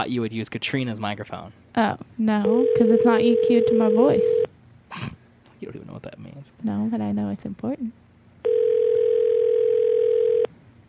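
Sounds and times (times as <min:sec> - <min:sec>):
speech: 0:00.0 - 0:08.0
faint noise: 0:00.0 - 0:10.8
electronic ringing tone of an outgoing phone call: 0:02.4 - 0:04.5, 0:08.4 - 0:10.5.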